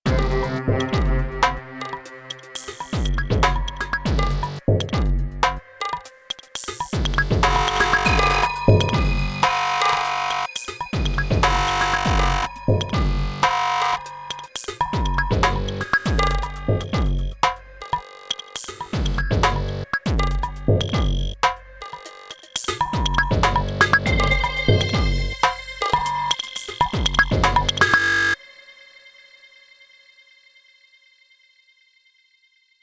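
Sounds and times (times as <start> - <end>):
ambient groove on a Korg Radias-R synthesizer: 0.0 - 28.4.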